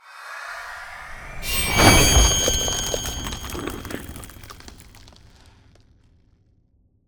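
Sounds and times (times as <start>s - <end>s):
ice spell whoosh: 0.7s - 4.8s.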